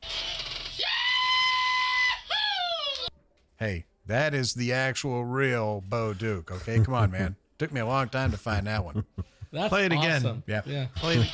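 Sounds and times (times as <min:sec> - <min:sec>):
recorded man's high-pitched rebel yell whoop: 0:00.8 - 0:03.1
speech: 0:03.6 - 0:11.3.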